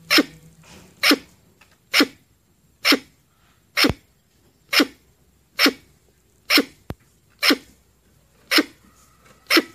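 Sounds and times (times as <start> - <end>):
red squirrel calls with short harsh breathy bursts: 0.0 - 0.4, 1.0 - 2.2, 2.8 - 6.8, 7.4 - 7.8, 8.4 - 9.7.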